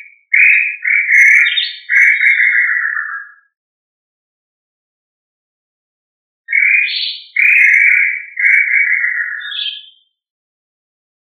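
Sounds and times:
quail giving a whistled call: 0.0 - 3.4, 6.5 - 10.0.

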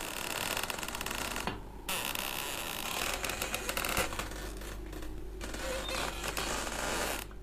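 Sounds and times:
door of an oil-drying room creaking: 0.0 - 7.4.

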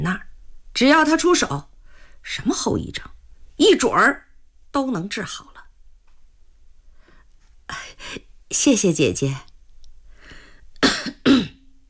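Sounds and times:
speech: 0.0 - 5.5, 7.7 - 9.5
harsh throaty coughs: 10.8 - 11.6.

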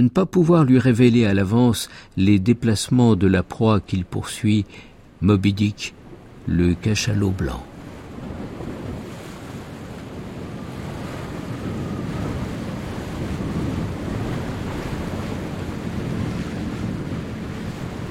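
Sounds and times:
speech: 0.0 - 7.7
rough sea waves rolling the day after a typhoon: 0.0 - 18.0
gusting wind over the sea the day after a typhoon: 1.9 - 18.0.

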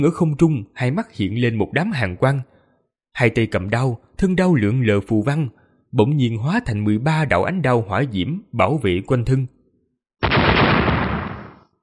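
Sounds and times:
speech: 0.0 - 2.5, 3.2 - 9.6
explosion sound effect: 10.2 - 11.7.

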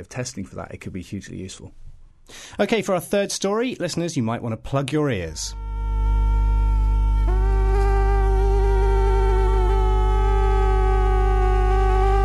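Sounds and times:
speech: 0.0 - 5.6
steady low hum: 5.1 - 12.2
two mosquitoes buzzing close to the ear: 5.5 - 12.2.

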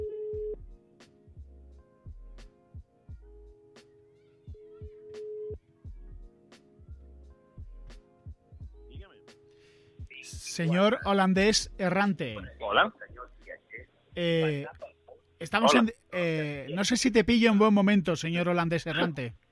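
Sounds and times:
low thumping beat: 0.4 - 3.4, 6.9 - 9.1, 10.0 - 14.9
ringback tone of an outgoing telephone call: 5.1 - 5.6
speech: 10.6 - 13.0, 14.2 - 14.8, 15.5 - 19.4.

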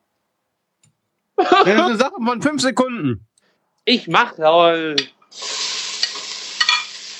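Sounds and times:
laughter: 1.4 - 2.2
speech: 1.4 - 3.3, 3.9 - 5.5
vegetables frying in hot oil in a pan: 5.3 - 7.1
clinks and scrapes of stirring in a pan: 6.0 - 6.9.

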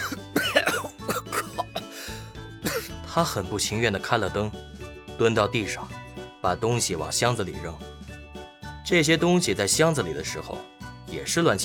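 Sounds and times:
rough throat-clearing: 0.0 - 1.9, 2.6 - 3.0
person coughing after choking on dust: 0.0 - 2.0, 2.6 - 3.0
speech: 3.2 - 8.0, 8.9 - 11.6.

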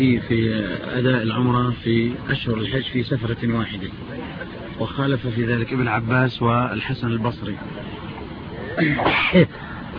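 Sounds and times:
speech: 0.0 - 8.0, 8.8 - 9.6
sneeze: 8.8 - 9.5.

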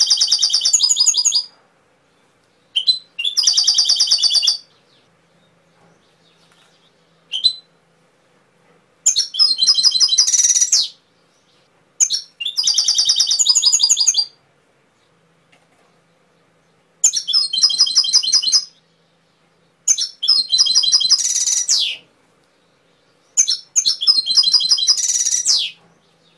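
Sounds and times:
canary singing trilled phrases: 0.0 - 1.5, 2.7 - 5.0, 6.8 - 7.7, 9.0 - 11.0, 12.0 - 14.4, 17.0 - 18.8, 19.9 - 22.0, 23.3 - 25.8.

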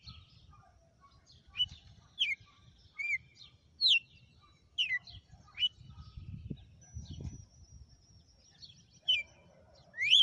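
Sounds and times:
female red-cowled cardinal singing clear slurred whistles: 1.5 - 4.1, 4.8 - 5.8, 9.0 - 9.4, 9.9 - 10.1.

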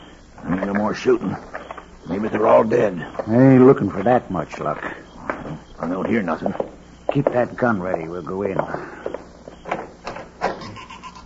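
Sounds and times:
hiss: 0.0 - 11.2
speech: 0.7 - 5.0, 5.8 - 9.0
door creaking open at a house at night: 9.6 - 11.2.

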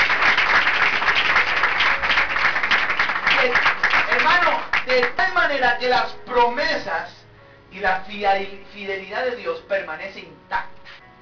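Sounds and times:
congregation applauding during a church service: 0.0 - 5.4
speech: 4.4 - 10.7.

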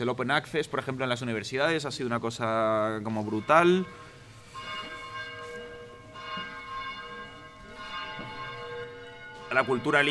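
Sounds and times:
speech: 0.0 - 4.1, 9.5 - 10.1
church bell ringing: 2.7 - 10.1.

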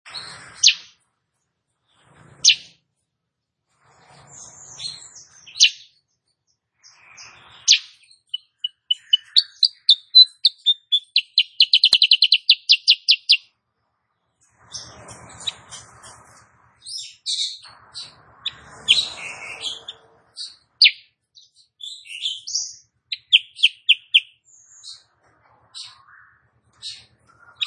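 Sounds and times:
female sooty-headed bulbul singing energetically: 6.8 - 13.5, 16.9 - 25.0.

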